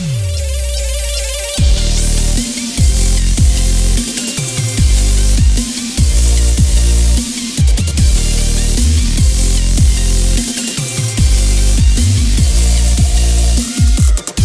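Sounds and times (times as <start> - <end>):
music with mid frequencies filtered on a DJ controller: 0.0 - 14.4.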